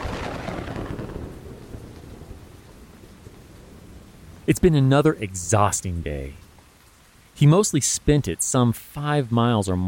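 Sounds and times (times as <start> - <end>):
low rolling rumble of thunder: 0.0 - 4.5
steady heavy rain in a thunderstorm: 0.0 - 9.8
speech: 4.5 - 6.4, 7.4 - 9.8.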